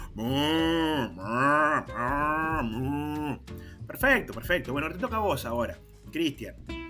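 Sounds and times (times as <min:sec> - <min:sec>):
people imitating cows mooing: 0:00.0 - 0:03.5
speech: 0:00.2 - 0:00.5, 0:04.0 - 0:06.8.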